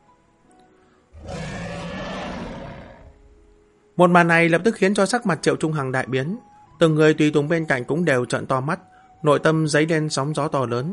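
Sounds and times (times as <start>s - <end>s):
huge sea beast roaring as it leaps from the sea: 1.2s - 3.4s
speech: 4.0s - 10.9s.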